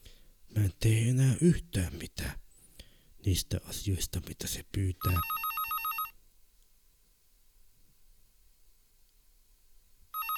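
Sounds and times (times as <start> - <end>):
speech: 0.6 - 2.4, 3.2 - 5.4
telephone bell ringing: 5.0 - 6.2, 10.2 - 10.3.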